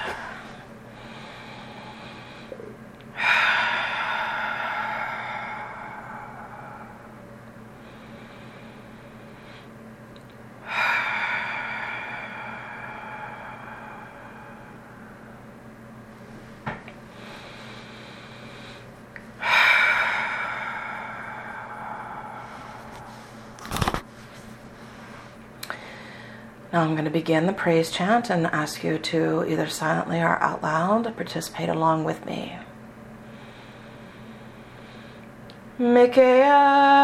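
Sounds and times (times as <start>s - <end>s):
long slow deep breathing during a seated guided relaxation: 0.0s - 9.9s, 10.6s - 16.0s, 17.0s - 23.8s, 24.7s - 26.6s, 33.1s - 35.6s
faint low steady hum: 0.0s - 37.0s
speech: 26.8s - 32.6s, 36.1s - 36.7s.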